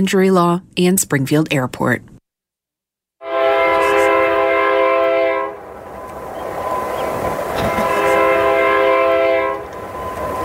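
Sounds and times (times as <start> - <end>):
speech: 0.0 - 2.1
train horn blasting: 3.2 - 10.4
rumbling rail noise: 3.3 - 10.4.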